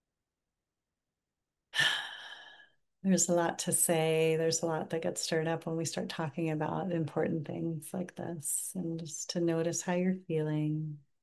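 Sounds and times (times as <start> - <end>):
deep breath during a guided calming pause: 1.8 - 2.8
speech: 3.0 - 11.1.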